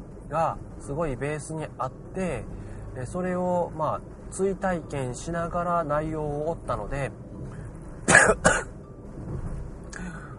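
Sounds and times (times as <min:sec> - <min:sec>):
low hiss: 0:00.0 - 0:10.3
speech: 0:00.3 - 0:07.2
person clearing throat: 0:08.1 - 0:08.7.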